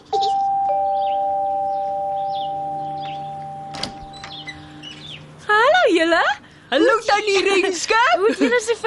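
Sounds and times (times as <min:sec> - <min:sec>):
front door bell chiming two tones: 0:00.2 - 0:04.6
speech: 0:06.7 - 0:08.8.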